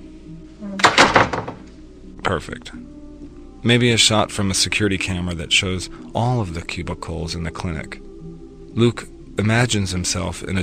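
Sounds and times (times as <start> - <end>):
hollow core door shutting: 0.8 - 1.7
speech: 2.3 - 3.0, 3.6 - 8.1, 8.8 - 10.6.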